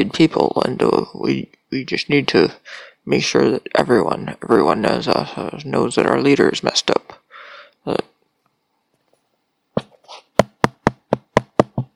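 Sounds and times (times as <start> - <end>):
speech: 0.0 - 7.2, 7.8 - 8.1
knocking on a door: 10.4 - 11.9.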